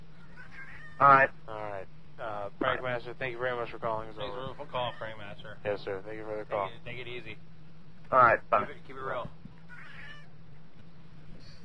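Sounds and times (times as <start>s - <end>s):
low hum: 0.0s - 11.6s
cat meowing: 0.2s - 1.1s, 9.7s - 10.3s
speech: 1.0s - 1.9s, 2.5s - 7.5s, 8.1s - 9.4s.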